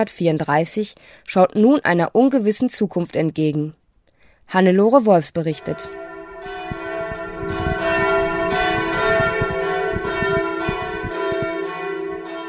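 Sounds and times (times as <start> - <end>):
speech: 0.0 - 3.8, 4.5 - 6.0
church bells of a 1934 Protestant church in Westerholt-Bertlich pealing for service: 5.5 - 12.4.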